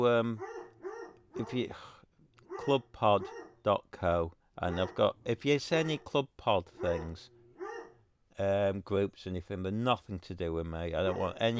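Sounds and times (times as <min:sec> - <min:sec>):
speech: 0:00.0 - 0:00.6, 0:01.4 - 0:02.0, 0:02.6 - 0:07.4, 0:08.4 - 0:11.5
dogs barking: 0:00.3 - 0:01.7, 0:02.4 - 0:03.7, 0:04.6 - 0:06.2, 0:06.8 - 0:08.0, 0:11.0 - 0:11.5.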